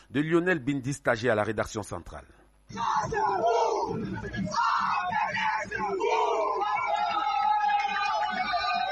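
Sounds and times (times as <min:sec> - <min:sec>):
speech: 0:00.1 - 0:06.2
dense crowd of football supporters shouting and cheering: 0:02.7 - 0:08.9.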